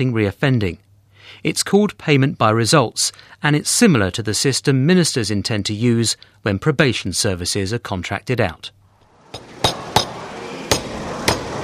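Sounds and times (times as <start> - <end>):
speech: 0.0 - 9.5
faint room hum: 0.0 - 11.6
hammer striking wood in a carpentry workshop: 9.4 - 11.6.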